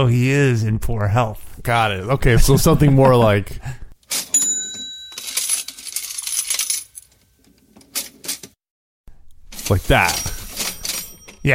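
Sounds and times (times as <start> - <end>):
speech: 0.0 - 4.2, 9.7 - 10.3
cash register drawer and coins rattling: 4.0 - 8.6, 9.5 - 11.5
cash register bell ding: 4.1 - 7.3, 9.6 - 11.5
short metallic clinks: 4.1 - 7.4, 9.6 - 11.5.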